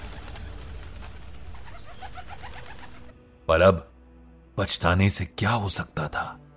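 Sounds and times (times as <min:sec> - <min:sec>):
pigeons cooing: 0:01.5 - 0:03.1
speech: 0:03.5 - 0:03.9, 0:04.6 - 0:06.4.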